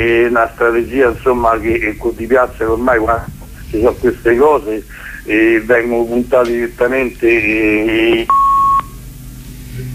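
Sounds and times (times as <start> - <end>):
speech: 0.0 - 8.4
low hum: 0.0 - 9.9
telephone beep as a phone call drops: 8.1 - 9.0.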